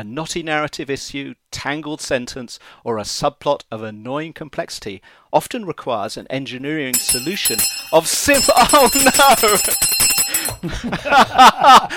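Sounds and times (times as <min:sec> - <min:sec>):
speech: 0:00.0 - 0:11.9
bright metallic bell ringing to signal time is up: 0:07.0 - 0:10.7
laughter: 0:10.6 - 0:11.9.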